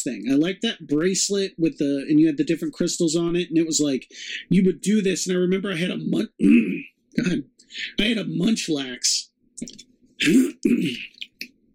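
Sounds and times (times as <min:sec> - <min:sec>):
speech: 0:00.0 - 0:11.3
person clearing throat: 0:06.4 - 0:07.4, 0:10.2 - 0:11.4.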